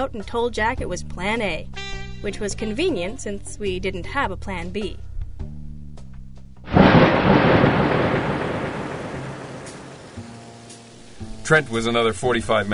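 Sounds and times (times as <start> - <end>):
speech: 0.0 - 5.1, 11.5 - 12.7
heavy rain drumming on a car: 6.7 - 10.3
thunder-like rumble: 6.7 - 10.4.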